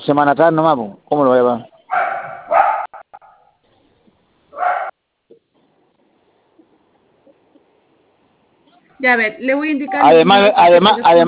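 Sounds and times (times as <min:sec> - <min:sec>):
speech: 0:00.1 - 0:01.7, 0:09.0 - 0:11.2
dog yipping: 0:01.9 - 0:03.4, 0:04.6 - 0:04.9
dog barking: 0:01.9 - 0:03.6, 0:04.6 - 0:05.0.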